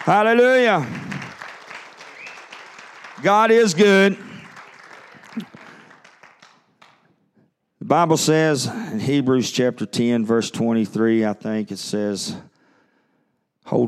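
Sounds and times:
speech: 0.0 - 1.0, 3.2 - 4.3, 7.9 - 12.5, 13.7 - 13.8
audience clapping hands in praise: 0.0 - 7.1.

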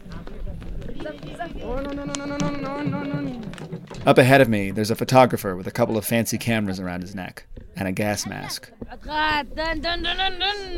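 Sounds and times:
donkey hooves clopping on hard ground: 0.0 - 10.7
loud sustained voices of a crowd setting off on foot: 0.0 - 10.7
speech: 1.1 - 10.7.

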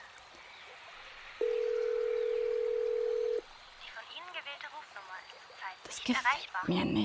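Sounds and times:
faint hiss: 0.0 - 7.0
telephone dial tone during call attempt: 1.4 - 3.4
speech: 6.1 - 7.0.

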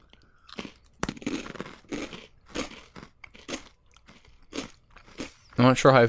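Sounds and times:
crunching of a crisp taco-shaped snack: 0.0 - 5.7.

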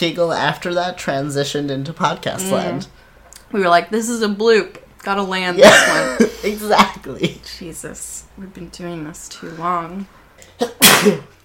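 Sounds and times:
speech: 0.0 - 11.4
person sneezing: 10.5 - 11.4.

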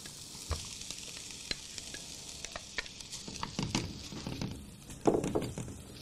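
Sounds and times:
mushrooms sizzling uncovered in a frying pan: 0.0 - 6.0
knocks and scrapes from stirring mushrooms in a frying pan: 2.5 - 6.0.

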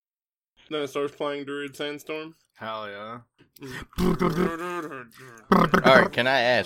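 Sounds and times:
speech: 0.7 - 6.6
man roaring: 3.8 - 6.3.

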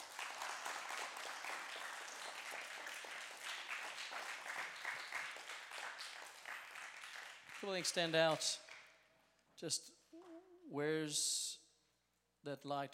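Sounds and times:
crowd applauding: 0.0 - 8.8
speech: 7.6 - 8.6, 9.6 - 10.0, 10.7 - 11.6, 12.4 - 12.9.

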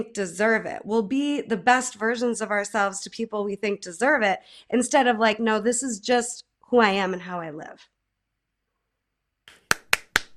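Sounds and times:
speech: 0.0 - 7.9
one person clapping hands: 9.5 - 10.3.

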